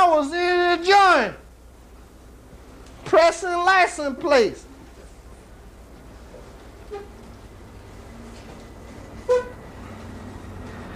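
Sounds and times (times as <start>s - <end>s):
speech: 0.2s - 1.4s, 3.1s - 4.7s
steady rumble of traffic: 1.4s - 10.9s
truck horn honking: 9.2s - 9.7s.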